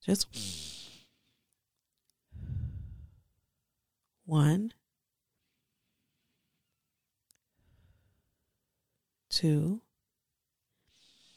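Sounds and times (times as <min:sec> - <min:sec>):
speech: 0:00.0 - 0:00.6, 0:04.3 - 0:04.8, 0:09.4 - 0:09.8
person breathing in and out during a guided eyes-closed breathing exercise: 0:00.3 - 0:01.2, 0:02.3 - 0:03.2, 0:10.9 - 0:11.3.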